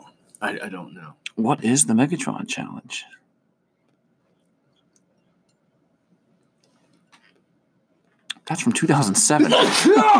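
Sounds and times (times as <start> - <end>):
speech: 0.4 - 3.2, 8.5 - 10.1
person sneezing: 9.4 - 10.1.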